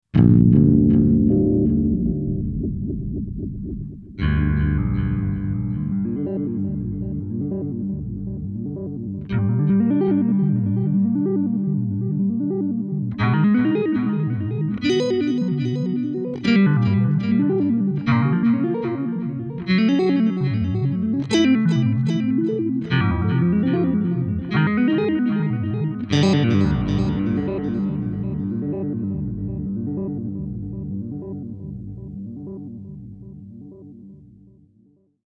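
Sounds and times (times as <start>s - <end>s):
dark dream sequence music: 0.2s - 34.2s.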